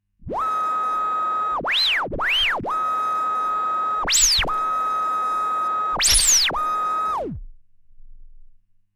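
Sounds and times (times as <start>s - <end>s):
MixVibes timecode backspins: 0.3s - 7.4s.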